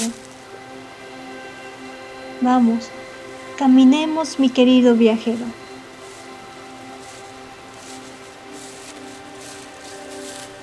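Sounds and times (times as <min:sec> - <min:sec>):
wind rustling forest tree leaves: 0:00.0 - 0:10.6
speech: 0:02.4 - 0:03.0, 0:03.6 - 0:05.6.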